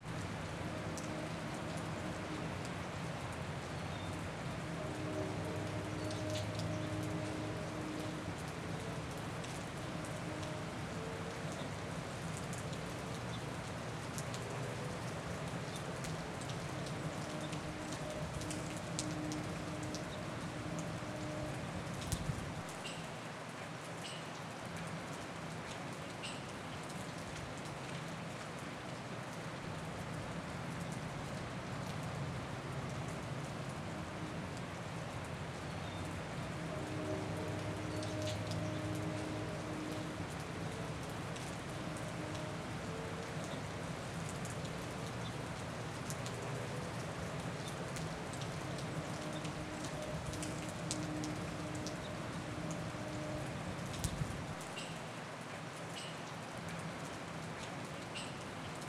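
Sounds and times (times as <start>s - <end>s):
rain on a college campus: 0.0s - 58.8s.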